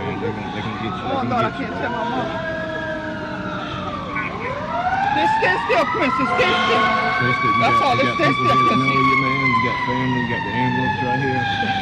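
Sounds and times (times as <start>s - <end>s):
people talking excitedly: 0.0s - 2.8s, 3.4s - 11.7s
ambulance siren holding a steady high wail: 0.0s - 11.7s
speech: 0.2s - 2.6s, 5.2s - 11.7s
laughter: 5.4s - 9.4s.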